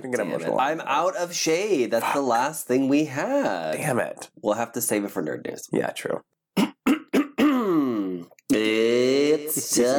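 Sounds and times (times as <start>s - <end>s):
speech: 0.0s - 6.3s, 9.7s - 9.9s
person clearing throat: 6.6s - 8.3s
vocal sound: 6.6s - 9.9s.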